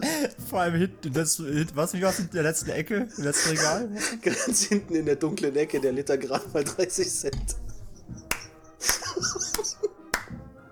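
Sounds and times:
speech: 0.2 - 9.4
laughter: 2.1 - 5.2, 6.0 - 10.1
sharp crisp hand claps: 8.1 - 10.5.

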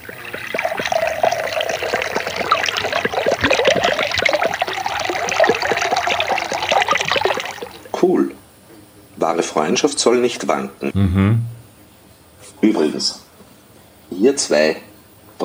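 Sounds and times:
soda water pouring into a glass: 0.0 - 8.0
speech: 9.3 - 11.5, 12.6 - 13.2, 14.2 - 14.8.

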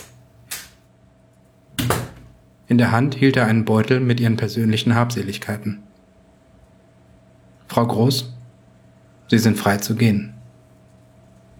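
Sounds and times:
door opening: 1.8 - 2.4
speech: 2.7 - 5.9, 7.8 - 8.4, 9.3 - 10.4.

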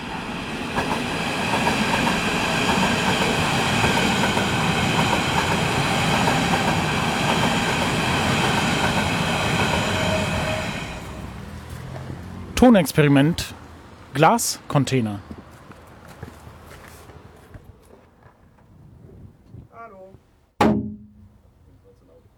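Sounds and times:
S-Bahn commuter train wheels rumbling on track: 0.0 - 17.3
speech: 12.6 - 13.6, 14.2 - 15.4.

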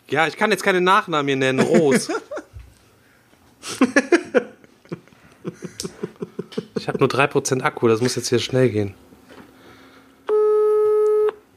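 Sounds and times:
quiet hiss: 0.0 - 10.4
speech: 0.1 - 2.3, 3.6 - 4.2, 6.9 - 9.1
laughter: 1.5 - 2.6, 3.6 - 7.3
telephone ringback tone of an outgoing call: 10.3 - 11.4.

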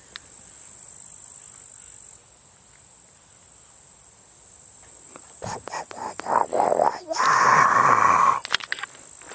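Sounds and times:
frogs croaking in a marshland: 5.1 - 8.6.

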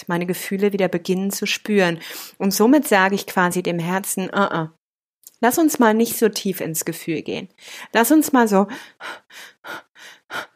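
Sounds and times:
speech: 0.0 - 4.8, 5.4 - 10.5
quick shallow breaths: 8.7 - 10.5.

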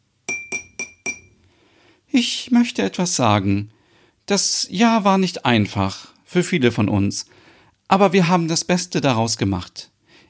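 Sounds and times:
drinking glass tapped with a utensil: 0.3 - 1.4
speech: 2.1 - 9.9.

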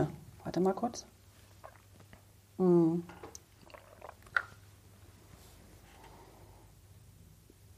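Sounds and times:
speech: 0.0 - 1.2, 2.6 - 3.2
person sipping water: 1.5 - 2.3, 3.2 - 4.7
swallow: 1.6 - 2.2, 3.2 - 4.6.

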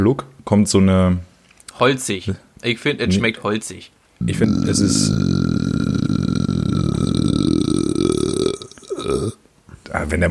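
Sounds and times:
speech: 0.0 - 6.2, 10.0 - 10.2
long loud drawn-out burp into the microphone: 4.3 - 9.4.

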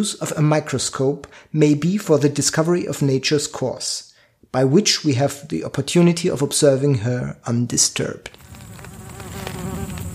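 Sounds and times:
speech: 0.0 - 8.4
fly or gnat buzzing: 8.4 - 10.1.

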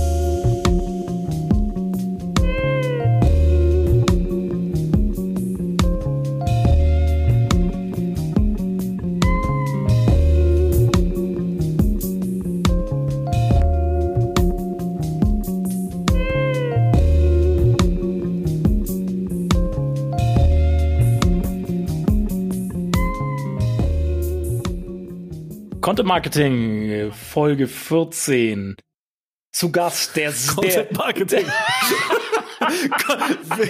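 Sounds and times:
short instrumental music interlude with bass, beat and bright melodic notes: 0.0 - 25.8
speech: 25.9 - 28.8, 29.5 - 33.6
laughter: 30.9 - 33.6.

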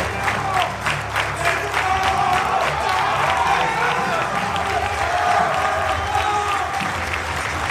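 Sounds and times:
large crowd applauding: 0.0 - 7.6.

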